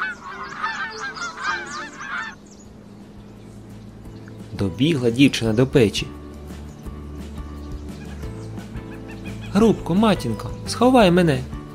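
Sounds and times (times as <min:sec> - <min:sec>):
geese honking and cackling: 0:00.0 - 0:02.4, 0:07.9 - 0:09.8
speech: 0:04.6 - 0:06.2, 0:09.6 - 0:11.6.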